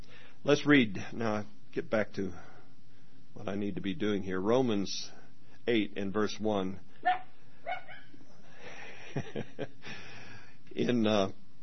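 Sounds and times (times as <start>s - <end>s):
speech: 0.4s - 2.5s, 3.4s - 6.9s, 9.2s - 10.0s, 10.8s - 11.4s
dog barks outside a meeting room: 7.0s - 8.2s
laughter: 8.6s - 9.9s.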